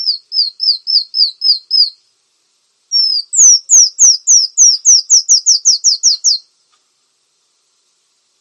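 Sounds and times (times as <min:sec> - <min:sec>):
brown-throated sunbird singing high slurred notes: 0:00.0 - 0:02.0, 0:02.9 - 0:06.5.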